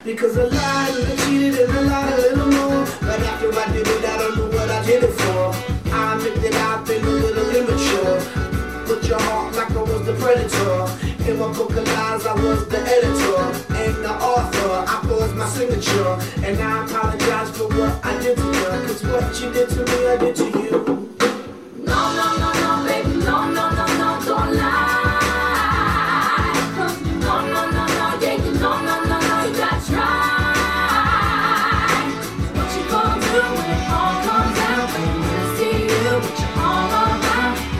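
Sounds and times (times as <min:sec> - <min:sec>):
song: 0:00.4 - 0:37.7.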